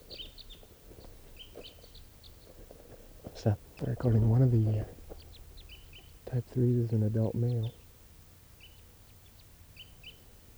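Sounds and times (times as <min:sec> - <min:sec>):
quiet hum: 0:00.0 - 0:10.5
small flock of birds chirping at the top of a tree: 0:00.0 - 0:10.5
speech: 0:03.4 - 0:05.0, 0:06.3 - 0:07.8.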